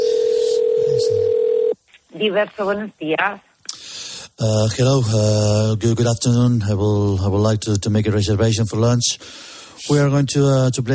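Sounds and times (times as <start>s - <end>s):
person answering phone and talking: 0.0s - 1.8s
telephone ringing tone on a call to a restaurant: 0.0s - 1.8s
speech: 2.2s - 3.5s, 4.4s - 10.9s.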